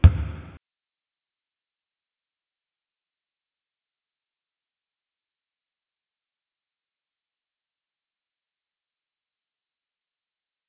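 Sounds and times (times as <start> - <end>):
basketball bouncing: 0.0 - 0.6.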